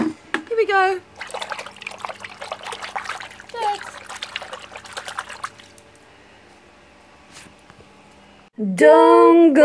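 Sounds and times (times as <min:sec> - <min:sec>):
speech: 0:00.6 - 0:01.1, 0:08.6 - 0:09.6
water poured onto a plant: 0:01.1 - 0:05.8.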